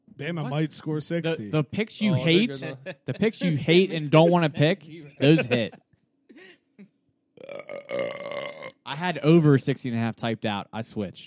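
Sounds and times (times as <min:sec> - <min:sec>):
speech: 0:00.2 - 0:05.8, 0:09.0 - 0:11.2
laughter: 0:00.4 - 0:05.8
short throaty gulps: 0:07.4 - 0:08.9
loud drawn-out burp from a person: 0:07.4 - 0:09.0.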